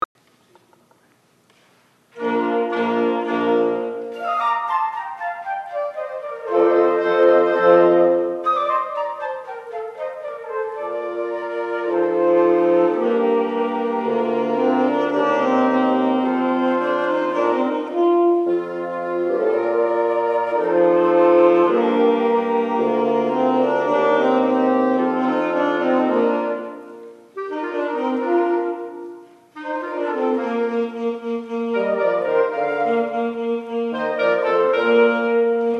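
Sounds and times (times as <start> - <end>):
quintet playing in E flat: 2.1 - 35.7.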